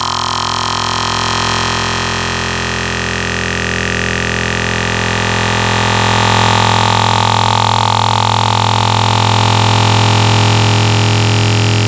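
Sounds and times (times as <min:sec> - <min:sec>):
synthesizer wavetable sounds: 0:00.0 - 0:11.8.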